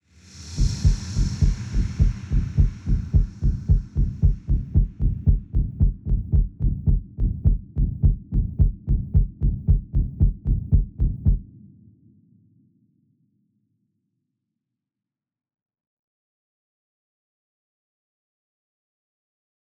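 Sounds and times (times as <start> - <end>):
accelerated heartbeat: 0.6 - 11.4.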